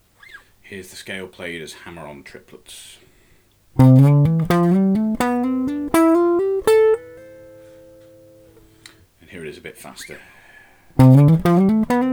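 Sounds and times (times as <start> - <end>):
guitar playing C major scale hammer-on triplets: 3.8 - 8.8, 11.0 - 12.1.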